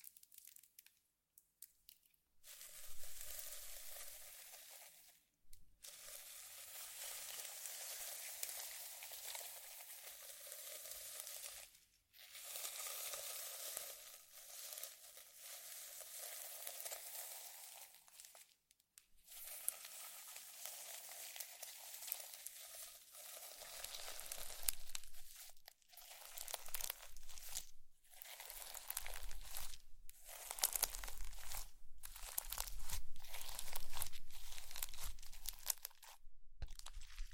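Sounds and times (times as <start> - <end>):
slime squished and stretched: 1.9 - 18.5, 19.2 - 37.3.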